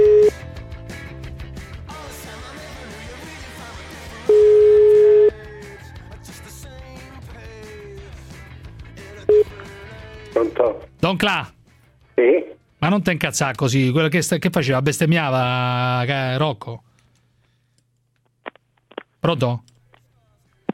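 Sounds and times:
telephone ringback tone while calling a priest: 0.0s - 0.4s, 4.3s - 5.3s
speech: 11.1s - 11.6s, 12.8s - 16.9s, 19.2s - 19.7s.

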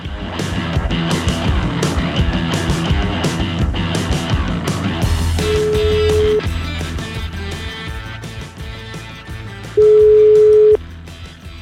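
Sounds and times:
busy music: 0.0s - 11.6s
telephone ringing tones of an outgoing call from Milan: 5.4s - 6.4s, 9.8s - 10.8s.

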